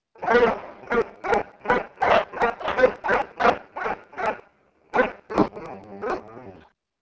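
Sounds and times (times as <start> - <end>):
dog barking: 0.2 - 4.4, 5.0 - 6.4.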